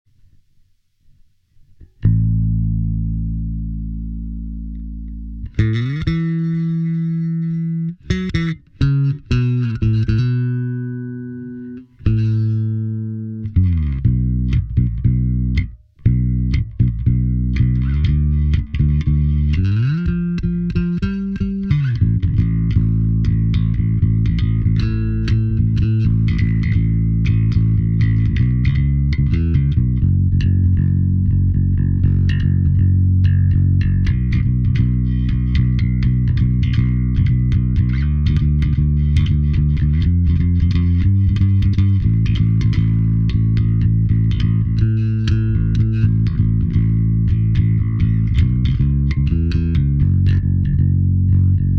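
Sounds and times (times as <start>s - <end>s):
bass: 0.0s - 51.7s.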